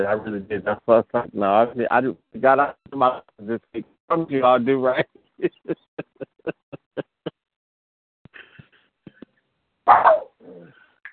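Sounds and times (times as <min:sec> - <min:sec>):
speech: 0:00.0 - 0:05.8
laughter: 0:04.9 - 0:07.3
dog barking: 0:09.9 - 0:10.4.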